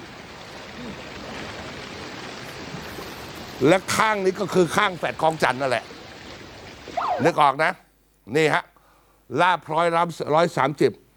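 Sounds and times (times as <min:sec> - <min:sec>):
steady rain falling on Soi Lat Phrao 130: 0:00.0 - 0:07.8
speech: 0:03.6 - 0:05.9, 0:07.2 - 0:08.7, 0:09.3 - 0:11.0.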